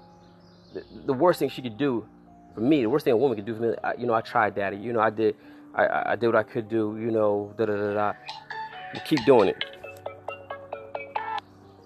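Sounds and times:
speech: 0.7s - 9.7s
phone ringing with an electronic ringtone: 8.1s - 11.4s.

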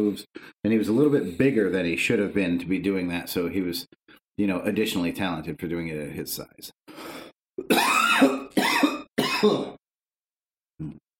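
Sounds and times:
speech: 0.0s - 8.4s, 9.4s - 9.8s
person coughing in harsh bursts: 7.6s - 9.8s.

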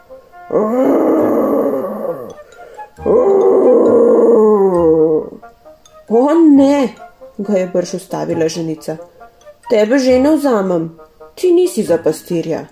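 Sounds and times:
speech: 0.5s - 0.9s, 6.1s - 9.1s, 9.7s - 12.7s
voice imitating a bear's roar in a told story: 0.5s - 2.4s, 3.0s - 5.5s.

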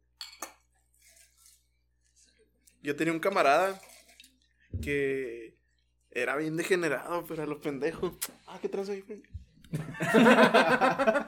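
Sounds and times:
glasses clinking: 0.2s - 0.7s
speech: 2.8s - 3.9s, 4.8s - 5.5s, 6.1s - 11.2s
laughter: 9.7s - 11.2s.

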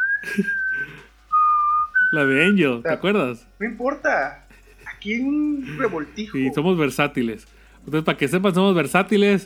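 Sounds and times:
whistled melody: 0.0s - 2.6s
speech: 0.3s - 1.0s, 2.1s - 4.4s, 5.0s - 9.4s.

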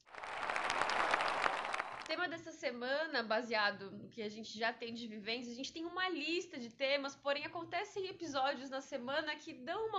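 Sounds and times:
crowd applauding: 0.0s - 2.1s
speech: 2.1s - 9.9s.

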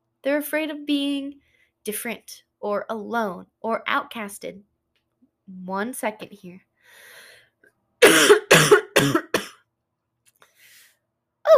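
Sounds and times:
speech: 0.2s - 4.7s, 5.5s - 7.1s, 8.1s - 9.2s
faint breath: 6.8s - 7.6s, 10.4s - 11.1s
person coughing: 8.0s - 9.6s.

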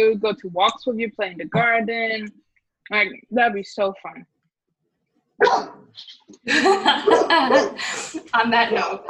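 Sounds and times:
speech: 0.0s - 4.3s, 5.4s - 9.0s
dog barking at someone at the door: 5.4s - 5.9s, 7.0s - 7.8s, 8.8s - 9.0s
laughter: 6.5s - 9.0s.

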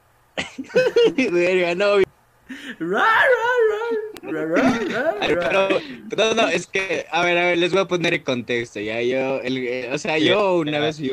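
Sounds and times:
laughter: 0.4s - 1.4s, 3.4s - 6.6s
speech: 0.6s - 11.1s
person's voice mimicking a dog with whimpers, yips and whines: 2.8s - 5.1s.

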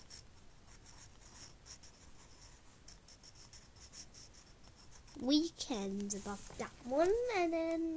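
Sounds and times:
pen or pencil writing and underlining by hand on paper: 0.1s - 5.2s
speech: 5.2s - 7.9s.

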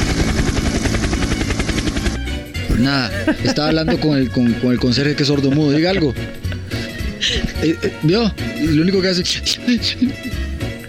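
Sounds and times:
broad roaring helicopter whine: 0.0s - 2.5s
helicopter rotor thudding: 0.0s - 5.5s
speech: 2.8s - 6.5s, 7.2s - 10.4s
laughter: 2.8s - 8.0s.

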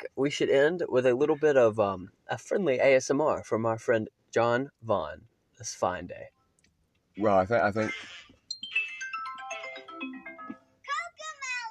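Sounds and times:
speech: 0.1s - 6.4s, 7.2s - 8.2s
phone ringtone melody: 8.5s - 10.8s.

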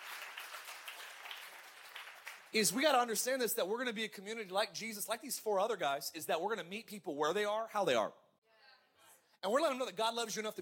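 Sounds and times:
church audience hand clapping: 0.0s - 3.0s
speech: 2.5s - 8.2s, 9.4s - 10.5s.

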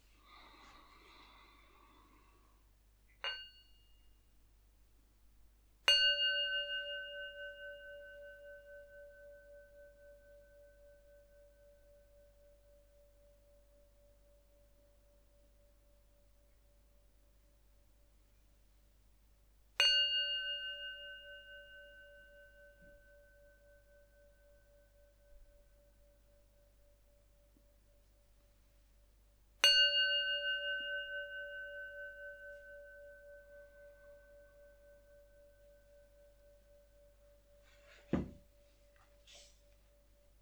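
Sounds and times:
meditation bell being struck: 3.2s - 4.4s, 5.9s - 17.0s, 19.8s - 28.4s, 29.6s - 40.4s.

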